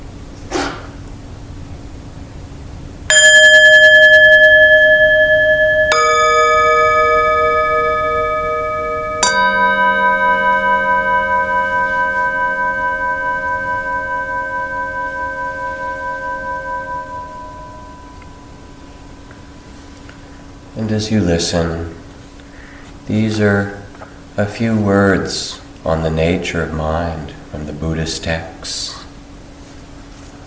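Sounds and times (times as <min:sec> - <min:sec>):
meditation bells struck during a guided meditation: 0:03.1 - 0:22.8
speech: 0:21.0 - 0:21.9, 0:23.1 - 0:23.8, 0:24.4 - 0:29.0.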